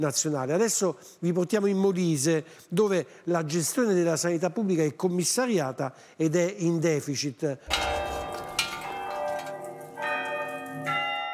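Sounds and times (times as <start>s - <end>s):
speech: 0.0s - 8.0s
church bells ringing: 7.7s - 11.3s.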